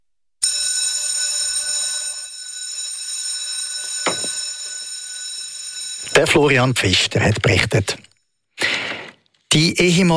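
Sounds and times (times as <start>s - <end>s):
electric school bell ringing: 0.4s - 7.2s
speech: 6.2s - 8.1s, 9.5s - 10.1s.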